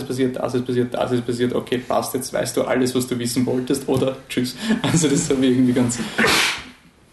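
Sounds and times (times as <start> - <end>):
speech: 0.1 - 6.5
sneeze: 6.2 - 6.8.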